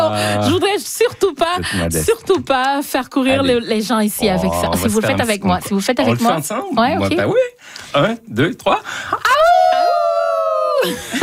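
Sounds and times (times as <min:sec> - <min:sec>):
speech: 0:00.1 - 0:09.5, 0:10.8 - 0:11.2
festival audience imitating a wolf howl in unison: 0:09.3 - 0:10.8.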